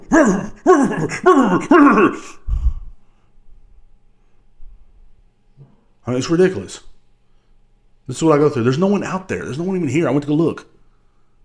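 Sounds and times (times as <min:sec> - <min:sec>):
dog whining barks: 0:00.0 - 0:02.4
speech: 0:00.2 - 0:02.4, 0:06.1 - 0:06.9, 0:08.1 - 0:10.7.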